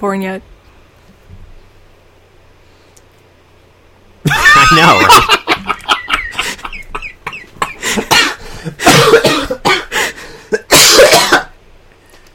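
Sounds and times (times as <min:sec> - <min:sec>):
speech: 0:00.0 - 0:00.5, 0:04.6 - 0:05.2
laughter: 0:04.3 - 0:08.8
man coughing: 0:06.3 - 0:11.6.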